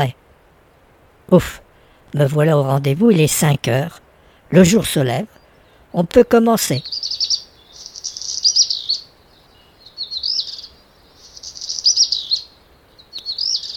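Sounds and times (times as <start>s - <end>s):
speech: 0.0s - 0.2s, 1.3s - 7.1s
black redstart singing: 0.0s - 13.7s.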